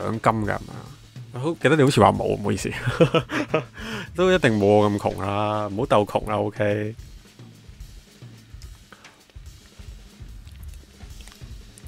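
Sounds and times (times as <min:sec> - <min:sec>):
speech: 0:00.0 - 0:07.1
laughter: 0:02.7 - 0:04.2
person chewing candy: 0:08.6 - 0:11.8.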